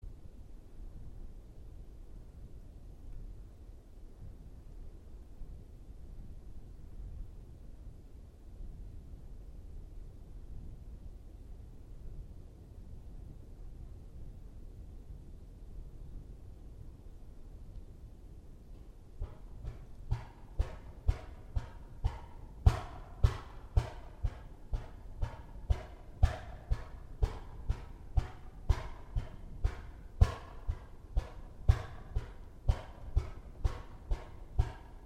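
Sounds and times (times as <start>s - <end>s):
wood knocking: 19.2s - 35.0s.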